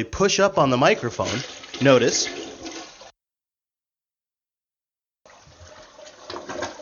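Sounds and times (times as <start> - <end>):
speech: 0.0 - 2.4
toilet flushing: 0.2 - 3.1, 5.3 - 6.8.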